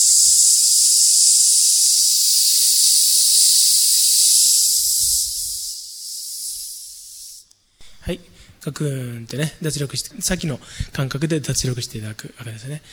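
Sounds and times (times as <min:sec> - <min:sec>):
long exhale hissing through teeth during a breathing exercise: 0:00.0 - 0:08.0
speech: 0:08.1 - 0:12.9.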